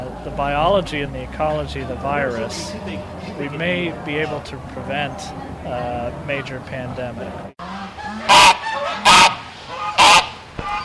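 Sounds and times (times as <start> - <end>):
speech: 0.2 - 7.6
wild birds honking harshly during field sampling for avian flu: 1.5 - 6.2, 7.6 - 10.8.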